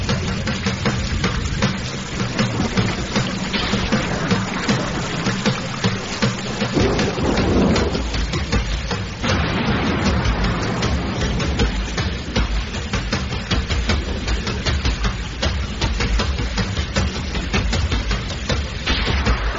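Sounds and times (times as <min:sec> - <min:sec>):
deep thunder rumbling: 0:00.0 - 0:15.1
heavy rain pouring with dripping and splashing: 0:00.0 - 0:19.5.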